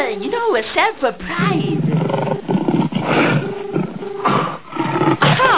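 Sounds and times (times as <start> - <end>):
speech: 0.1 - 1.8
lion roaring: 1.6 - 5.3.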